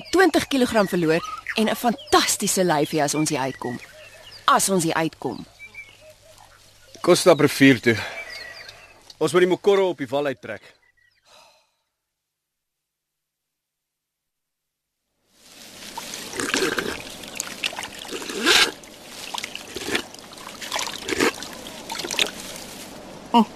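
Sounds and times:
speech: 0.1 - 5.5, 7.0 - 8.2, 9.2 - 10.8, 23.3 - 23.5
water trickling and pouring: 15.4 - 22.8.

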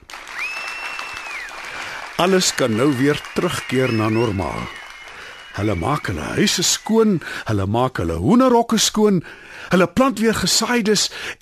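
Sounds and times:
townspeople cheering and clapping with joy: 0.0 - 7.5
sustained high whistle: 0.3 - 1.7, 2.3 - 7.3
speech: 2.2 - 4.8, 5.6 - 11.3.

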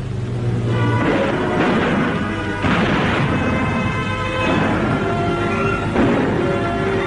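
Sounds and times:
steady tonal layer: 0.0 - 7.0
tank engines and tracks rumbling and clanking: 0.0 - 7.0
assault guns firing at approaching Soviet tanks: 1.0 - 7.0.

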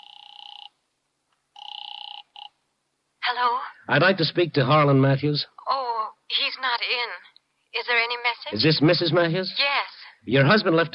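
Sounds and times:
telephone ringing over the line with an electronic trill: 0.0 - 0.8, 1.5 - 2.6
speech: 3.3 - 5.6, 6.3 - 10.9.

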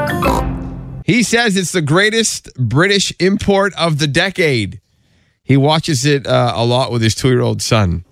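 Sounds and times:
cartoon pig oinking with nasal snorting grunts: 0.1 - 0.6
speech: 1.1 - 4.8, 5.5 - 8.0.

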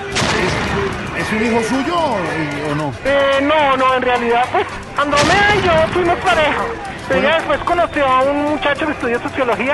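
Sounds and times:
booming blasts: 0.1 - 2.0, 5.0 - 6.6
crackling gunfire-like bursts: 0.1 - 2.0, 5.0 - 6.6
speech: 1.3 - 9.7.

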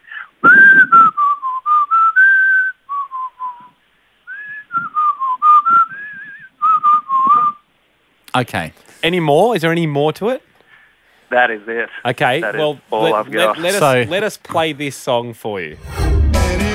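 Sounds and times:
person whistling a song melody: 0.4 - 7.6
speech: 8.4 - 10.5, 11.3 - 16.0.

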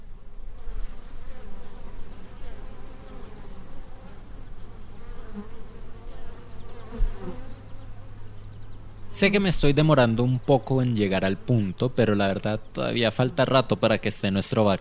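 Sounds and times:
many bees buzzing: 0.0 - 14.1
speech: 9.2 - 14.7.

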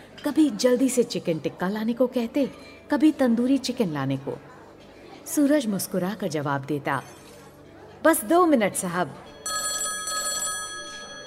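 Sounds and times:
speech: 0.2 - 4.5, 5.3 - 7.2, 8.0 - 9.3
telephone bell ringing: 9.4 - 11.2.

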